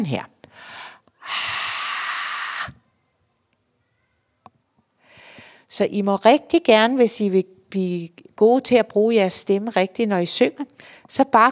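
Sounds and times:
speech: 0.0 - 1.5, 5.7 - 11.5
airy breath exhaled: 0.5 - 2.8.

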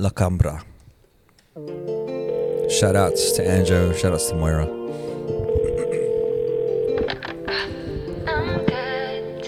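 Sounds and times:
speech: 0.0 - 0.7, 2.7 - 5.2
shifting electronic and musical sounds: 2.0 - 8.3
telephone dial tone: 2.1 - 9.2.

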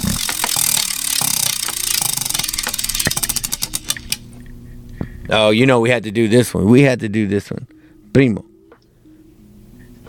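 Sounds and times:
prize wheel spinning and clicking: 0.0 - 4.2
speech: 5.3 - 8.5.

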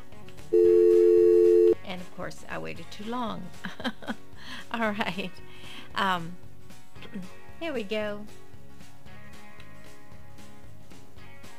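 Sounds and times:
telephone line tone while connecting a call: 0.6 - 1.8
speech: 2.2 - 6.5, 7.1 - 8.4.

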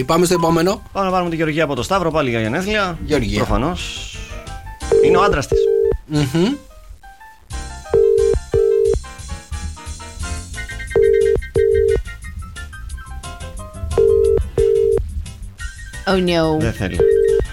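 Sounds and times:
speech: 0.0 - 4.2, 5.0 - 6.7, 16.1 - 17.2
upbeat music: 0.0 - 17.5
outgoing telephone call ringing unanswered on a radio show: 4.9 - 6.0, 8.0 - 9.0, 11.0 - 12.0, 14.0 - 15.0, 17.0 - 17.5.

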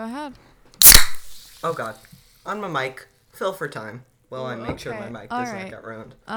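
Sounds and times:
speech: 0.0 - 0.6, 1.6 - 6.3
seltzer can cracking open with a pop: 0.8 - 1.8
seltzer fizzing hiss: 0.8 - 2.3.

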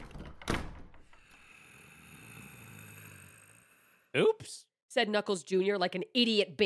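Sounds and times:
heavy door thudding shut: 0.0 - 1.2
faint rattling: 0.0 - 1.3
speech: 4.2 - 6.6.

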